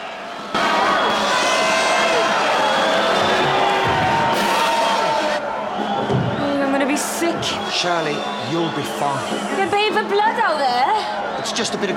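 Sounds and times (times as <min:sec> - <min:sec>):
rowdy theatre crowd jeering and shouting: 0:00.0 - 0:11.9
speech: 0:07.8 - 0:11.9.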